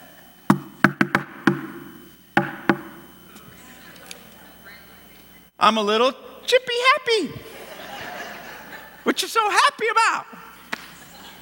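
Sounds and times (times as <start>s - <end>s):
cheerful bouncy knocking on a door: 0.5s - 1.8s, 2.4s - 3.0s
speech: 5.6s - 7.5s, 9.1s - 10.4s
laughter: 7.3s - 9.4s, 10.5s - 11.3s.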